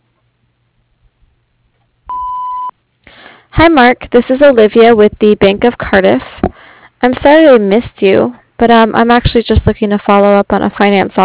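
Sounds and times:
voicemail beep tone: 0:02.1 - 0:02.7
speech: 0:03.6 - 0:06.3, 0:07.0 - 0:11.2.

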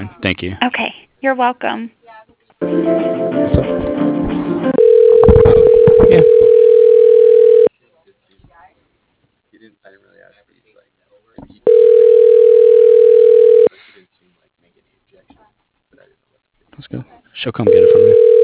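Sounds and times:
speech: 0:00.0 - 0:02.0, 0:02.7 - 0:03.9, 0:16.9 - 0:18.4
ringback tone on a phone line while a call is transferred to voicemail: 0:04.8 - 0:07.7, 0:11.7 - 0:13.7, 0:17.7 - 0:18.4.

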